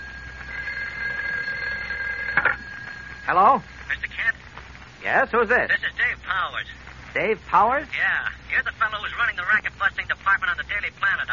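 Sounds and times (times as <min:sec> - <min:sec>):
telephone ringing: 0:00.0 - 0:04.4
speech: 0:03.3 - 0:04.4, 0:05.0 - 0:11.3.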